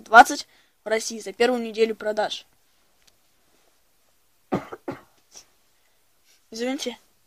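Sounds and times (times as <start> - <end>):
speech: 0.1 - 2.5, 6.5 - 7.0
person clearing throat: 4.5 - 5.2
person coughing: 4.5 - 5.4.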